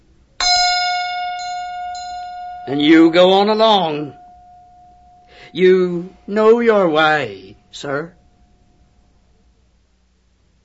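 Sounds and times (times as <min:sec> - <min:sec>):
bell rapped with a hammer: 0:00.4 - 0:06.2
speech: 0:02.7 - 0:04.2, 0:05.5 - 0:08.2.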